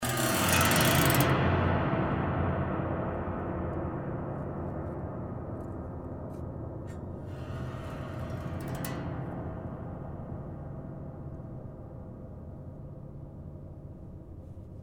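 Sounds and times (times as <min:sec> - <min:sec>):
piano: 0:00.0 - 0:14.8
thunder aftershock: 0:01.2 - 0:08.7.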